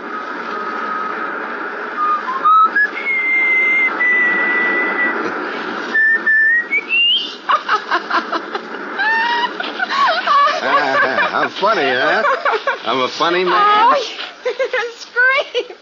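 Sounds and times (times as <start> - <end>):
faint hiss: 0.0 - 15.7
person whistling a melodic tune: 2.0 - 5.1, 5.9 - 7.3
laughter: 7.2 - 15.7
speech: 12.8 - 14.1.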